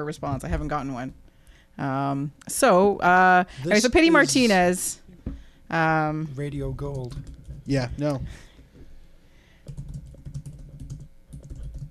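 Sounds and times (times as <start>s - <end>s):
speech: 0.0s - 5.1s, 5.7s - 8.5s
typing on a computer keyboard: 6.9s - 7.8s, 9.6s - 11.8s.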